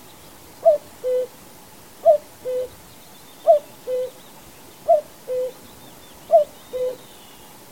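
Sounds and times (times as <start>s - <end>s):
Common Cuckoo calling cu-coo: 0.6s - 1.4s, 2.0s - 2.8s, 3.4s - 7.7s.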